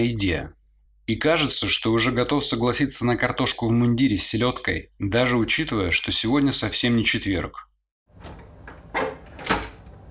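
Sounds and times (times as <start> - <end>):
speech: 0.0 - 8.4
door swinging open with a creak: 8.2 - 10.0.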